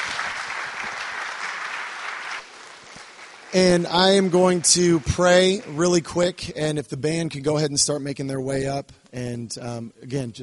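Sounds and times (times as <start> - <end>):
sizable crowd applauding: 0.0 - 6.3
speech: 3.5 - 10.4.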